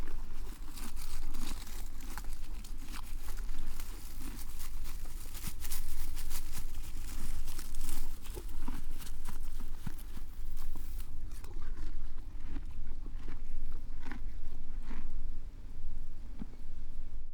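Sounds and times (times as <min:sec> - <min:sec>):
horse eating grass and hay: 0:00.0 - 0:17.2
low steady rumble: 0:00.0 - 0:17.3.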